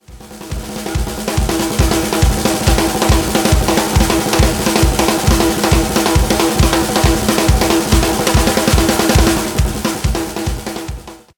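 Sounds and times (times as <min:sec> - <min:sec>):
dual snares: 0:00.0 - 0:11.3.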